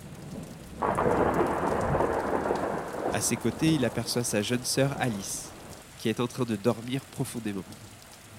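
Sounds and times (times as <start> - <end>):
heavy rain: 0.0 - 8.3
loud thunderclap rumbling: 0.2 - 5.8
speech: 3.2 - 7.9.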